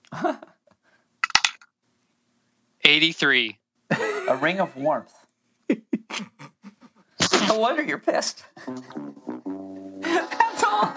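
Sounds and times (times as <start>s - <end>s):
percentile dice clattering onto a hard surface: 1.2s - 1.6s
speech: 2.8s - 5.8s, 7.5s - 9.5s, 10.1s - 10.9s
voice murmuring: 2.9s - 3.5s, 5.8s - 7.6s
laughter: 3.9s - 4.7s, 5.7s - 7.6s, 10.0s - 10.9s.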